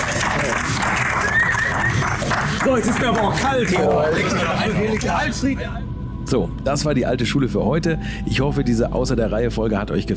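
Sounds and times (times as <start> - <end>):
crowd applauding: 0.0 - 5.3
speech: 2.7 - 10.1.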